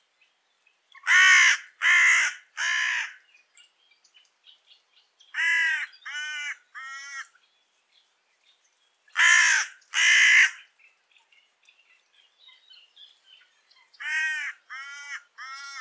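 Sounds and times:
Carrion crow Corvus corone cawing: 0:01.1 - 0:03.2, 0:05.4 - 0:07.3, 0:09.2 - 0:10.6, 0:14.0 - 0:15.8.

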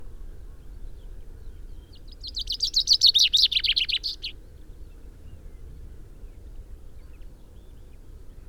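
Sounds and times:
common chaffinch singing: 0:02.2 - 0:04.3.

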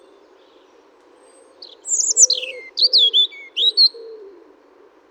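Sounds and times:
European robin Erithacus rubecula singing high whistled notes: 0:01.6 - 0:04.0.

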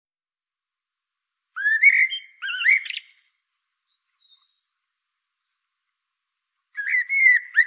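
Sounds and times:
common blackbird Turdus merula singing: 0:01.6 - 0:04.6, 0:06.8 - 0:07.6.

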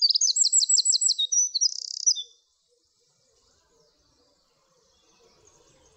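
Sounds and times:
Eurasian wren Troglodytes troglodytes singing: 0:00.0 - 0:02.4.

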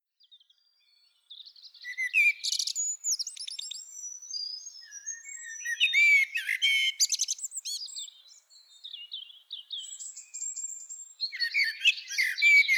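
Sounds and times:
common blackbird twittering with whistled slurs: 0:01.8 - 0:08.1, 0:09.8 - 0:12.7.

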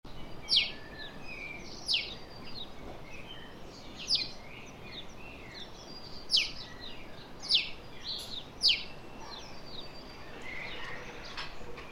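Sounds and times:
House sparrow Passer domesticus chirping: 0:00.1 - 0:11.9
background hiss: 0:00.1 - 0:11.9.

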